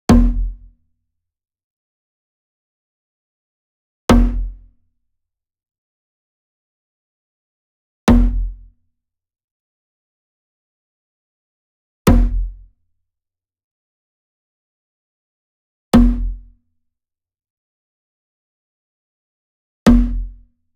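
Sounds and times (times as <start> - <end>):
wood drum floor hit slap: 0.1 - 0.6, 4.1 - 4.5, 8.1 - 8.5, 12.1 - 12.5, 16.0 - 16.3, 19.9 - 20.2.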